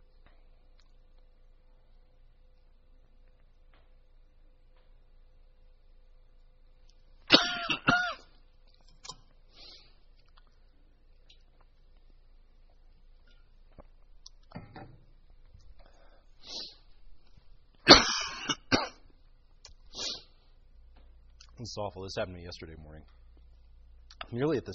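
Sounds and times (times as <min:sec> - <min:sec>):
loud coughing fit: 0:07.3 - 0:08.4, 0:17.8 - 0:19.2
speech: 0:21.6 - 0:23.2, 0:24.3 - 0:24.7.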